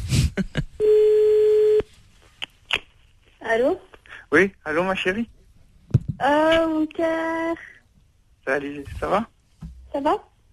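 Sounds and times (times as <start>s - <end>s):
speech: 0.4s - 0.6s, 3.5s - 5.4s, 6.2s - 7.7s, 8.4s - 9.3s, 9.9s - 10.3s
telephone call tone while dialing a home line: 0.8s - 1.9s.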